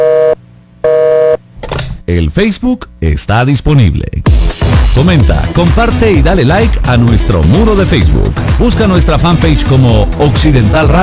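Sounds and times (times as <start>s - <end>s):
telephone busy signal with buzzy tone bursts: 0.0s - 1.4s
speech: 2.1s - 11.0s.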